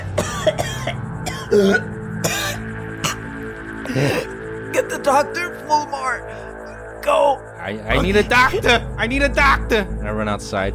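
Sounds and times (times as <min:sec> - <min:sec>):
woman coughing blood after falling over: 0:00.0 - 0:03.2
low musical drone: 0:00.0 - 0:10.7
speech: 0:01.5 - 0:02.0, 0:04.0 - 0:06.4, 0:07.1 - 0:10.7.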